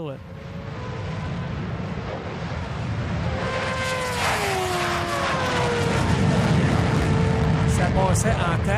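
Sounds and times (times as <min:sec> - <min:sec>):
speech: 0:00.0 - 0:00.6, 0:08.2 - 0:08.7
motorcycle, supercar, Formula 1 car and jet engines roaring in a 400-metre drag race: 0:00.0 - 0:08.7.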